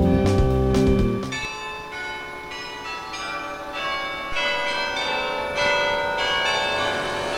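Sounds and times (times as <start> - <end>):
church tower bells of St. Martin's church in Bremen striking: 0.1 - 7.3.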